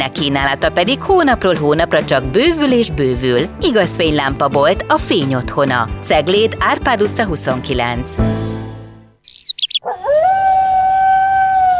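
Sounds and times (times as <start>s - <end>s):
speech: 0.0s - 8.6s
sharp high chirps: 9.2s - 9.9s
dog howling like a wolf: 9.6s - 11.7s.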